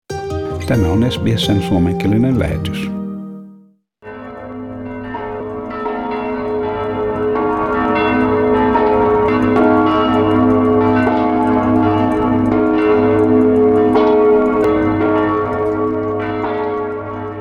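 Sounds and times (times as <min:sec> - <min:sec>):
church bells pealing in the Czech Republic: 0:00.6 - 0:03.4, 0:04.1 - 0:17.3
speech: 0:00.7 - 0:03.0.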